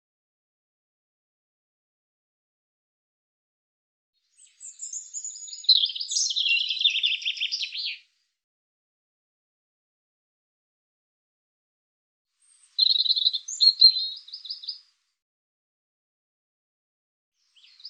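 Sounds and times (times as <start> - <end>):
European robin singing: 4.3 - 8.1, 12.4 - 14.9, 17.4 - 17.8.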